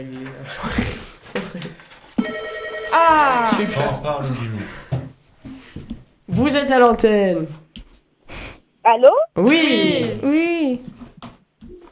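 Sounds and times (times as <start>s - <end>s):
speech: 0.0s - 1.7s, 2.9s - 4.8s, 6.4s - 7.6s, 8.8s - 10.9s
telephone ringing: 2.2s - 4.2s
laughter: 2.9s - 5.0s.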